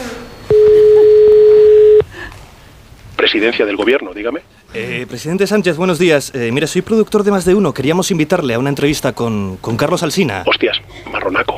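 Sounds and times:
steady electronic telephone connecting tone: 0:00.4 - 0:02.1
speech: 0:03.3 - 0:11.5.

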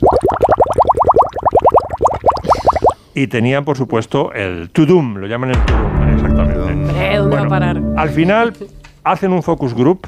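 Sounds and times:
bubbling sound effect evoking the ocean: 0:00.0 - 0:03.0
speech: 0:03.2 - 0:10.0.

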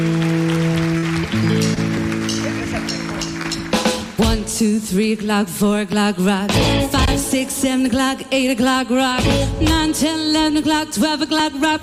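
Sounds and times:
audience applause: 0:00.0 - 0:04.3
speech: 0:04.6 - 0:11.8.

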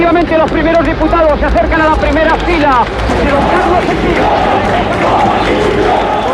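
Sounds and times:
speech: 0:00.1 - 0:06.3
crowd of hundreds of people shouting and roaring outside a parliament: 0:02.1 - 0:06.3.

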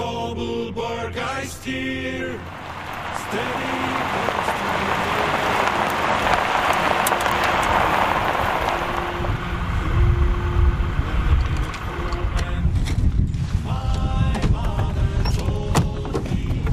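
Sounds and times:
low rumbling: 0:00.0 - 0:16.7
speech: 0:00.4 - 0:02.6, 0:03.3 - 0:05.0
steady rain: 0:02.4 - 0:12.4.

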